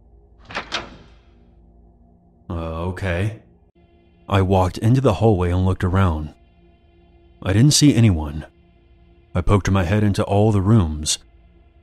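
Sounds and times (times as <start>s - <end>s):
door latch clicking: 0.5s - 1.2s
speech: 2.5s - 3.4s, 4.3s - 6.4s, 7.4s - 8.5s, 9.3s - 11.3s.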